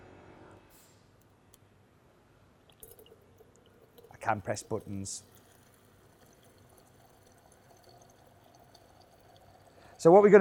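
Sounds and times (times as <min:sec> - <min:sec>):
hot water pouring into a cupping bowl: 0:02.6 - 0:10.3
speech: 0:04.2 - 0:05.3, 0:10.0 - 0:10.3.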